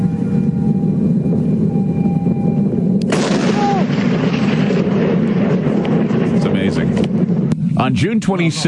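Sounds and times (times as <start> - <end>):
deep rumble of meteor entering the atmosphere over Australia: 0.0 - 8.6
sharp blast of meteor explosion in atmosphere: 3.0 - 8.6
loud broad roar of meteor: 3.1 - 4.5
speech: 7.9 - 8.6.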